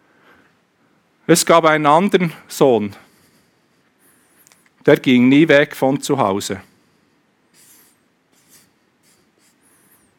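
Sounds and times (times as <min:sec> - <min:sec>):
speech: 0:01.3 - 0:03.0, 0:04.8 - 0:06.7
drawing strokes on paper: 0:07.6 - 0:10.1.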